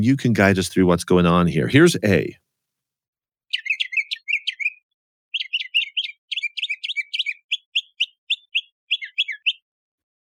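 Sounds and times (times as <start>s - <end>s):
speech: 0.0s - 2.4s
older male mockingbird singing: 3.5s - 9.7s.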